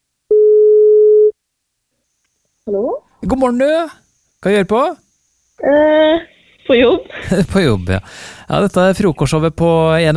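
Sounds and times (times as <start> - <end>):
telephone line tone while calling someone: 0.3 - 1.3
speech: 2.7 - 5.0, 5.6 - 10.1.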